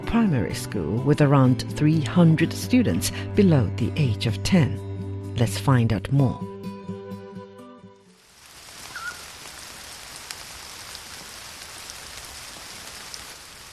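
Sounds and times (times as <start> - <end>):
speech: 0.1 - 6.5
steady rain at an elementary school in Deqin County China: 8.1 - 13.7.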